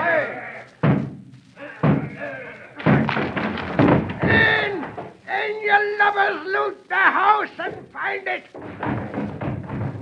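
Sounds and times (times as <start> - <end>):
raised voices shouting: 0.0 - 0.7, 1.6 - 3.2, 4.2 - 8.2
house door being battered down by a group: 0.8 - 5.2, 8.5 - 9.9.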